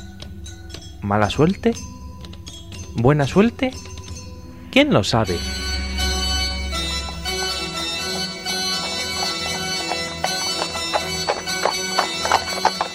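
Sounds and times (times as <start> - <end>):
horse hooves clip-clopping: 0.0 - 4.3, 7.0 - 12.9
sustained music: 0.0 - 12.9
speech: 1.0 - 2.0, 3.0 - 3.9, 4.7 - 5.6
low rumble: 4.3 - 10.9.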